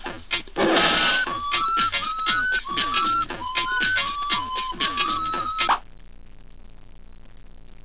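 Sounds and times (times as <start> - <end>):
jester singing: 0.0 - 5.6.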